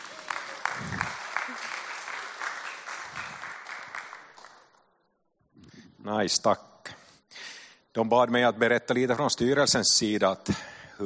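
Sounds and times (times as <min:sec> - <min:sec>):
room full of people clapping: 0:00.0 - 0:04.9
speech: 0:06.1 - 0:06.7, 0:08.0 - 0:11.0.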